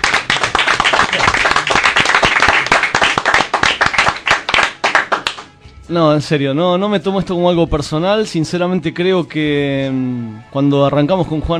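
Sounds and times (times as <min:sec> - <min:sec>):
studio audience applause: 0:00.0 - 0:05.5
speech: 0:05.9 - 0:11.5.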